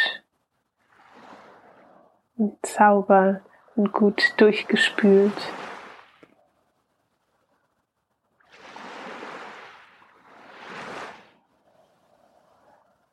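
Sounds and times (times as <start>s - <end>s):
ocean waves breaking on the shore: 0.8s - 2.2s, 3.1s - 6.3s, 8.4s - 13.1s
speech: 2.4s - 5.7s.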